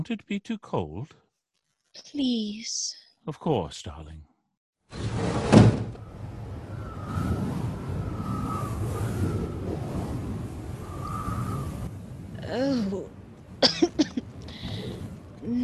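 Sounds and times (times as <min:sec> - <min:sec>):
speech: 0:00.0 - 0:01.2, 0:02.0 - 0:04.3
wind noise from outside: 0:04.9 - 0:15.6
window swinging open with a solid clunk: 0:05.0 - 0:06.0.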